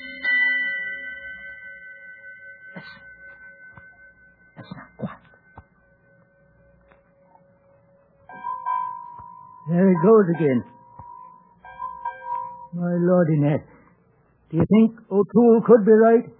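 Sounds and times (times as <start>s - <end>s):
ship's bell ringing six bells: 0.0s - 6.7s, 8.3s - 13.8s
speech: 2.8s - 3.0s, 9.7s - 10.7s, 13.0s - 13.7s, 14.5s - 16.3s.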